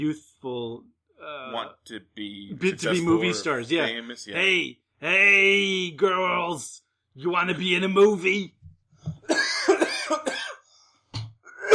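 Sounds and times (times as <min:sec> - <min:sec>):
speech: 0:00.0 - 0:08.6, 0:10.1 - 0:10.6
person imitating a raspy phlegmy hacking cough: 0:09.2 - 0:10.6, 0:11.4 - 0:11.7.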